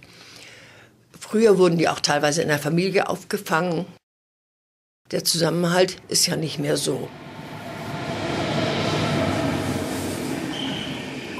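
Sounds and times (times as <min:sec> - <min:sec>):
speech: 0:01.3 - 0:04.0, 0:05.1 - 0:07.3
intercity train rolling into station platform: 0:05.4 - 0:11.3
thin high squeal of train wheels or brakes: 0:08.5 - 0:11.3.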